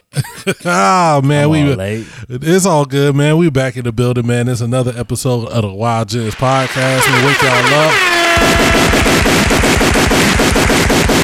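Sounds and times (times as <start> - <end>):
laughter: 0.1 - 2.0, 6.2 - 8.9
speech: 0.4 - 9.9
voice imitating rapid machine gun fire: 6.6 - 11.2.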